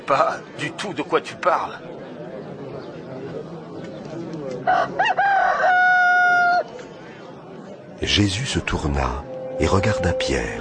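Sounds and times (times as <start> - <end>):
faint murmur: 0.0 - 10.5
speech: 0.1 - 2.0, 4.7 - 5.4, 8.0 - 10.5
rooster crowing: 4.6 - 6.7.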